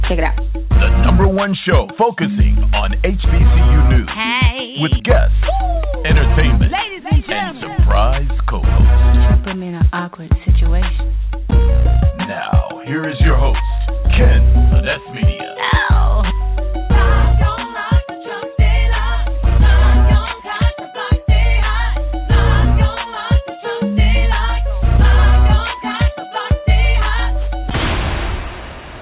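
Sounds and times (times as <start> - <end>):
loud bass-heavy electronic music with deep booming hits: 0.0 - 9.6, 10.5 - 20.4, 21.3 - 23.0, 23.9 - 27.7
speech: 0.1 - 15.9
rushing explosion-like burst of noise: 27.7 - 28.9.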